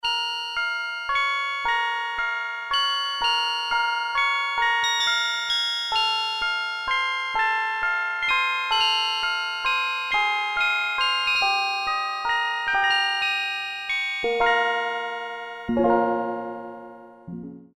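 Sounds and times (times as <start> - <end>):
Korg Poly-61M synthesizer music box tone: 0.1 - 17.7.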